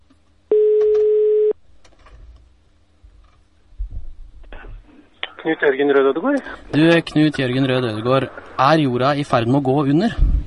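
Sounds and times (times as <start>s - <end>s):
telephone ringing tone while placing a call: 0.5s - 1.6s
speech: 5.5s - 10.3s.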